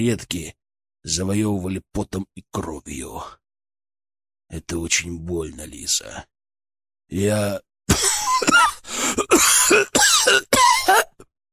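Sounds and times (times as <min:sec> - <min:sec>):
speech: 0:00.0 - 0:03.4, 0:04.5 - 0:06.3, 0:07.1 - 0:11.3
man's harsh dry coughing fit: 0:07.9 - 0:11.3.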